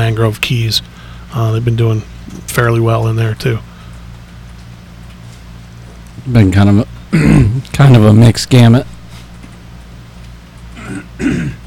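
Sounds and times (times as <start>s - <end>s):
speech: 0.1s - 3.7s, 6.2s - 8.9s, 11.2s - 11.6s
person clearing throat: 7.1s - 7.7s, 10.8s - 11.6s.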